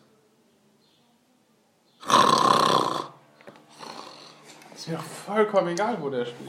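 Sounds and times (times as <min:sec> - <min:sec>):
person faking a loud rough snore: 0:02.0 - 0:04.4
speech: 0:04.9 - 0:06.4.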